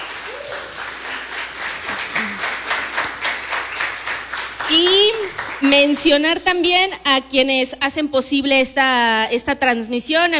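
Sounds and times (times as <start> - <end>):
crowd applauding: 0.0 - 6.2
speech: 4.7 - 10.3.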